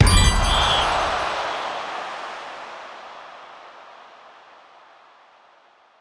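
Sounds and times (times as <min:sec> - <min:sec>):
hit sound: 0:00.0 - 0:01.5.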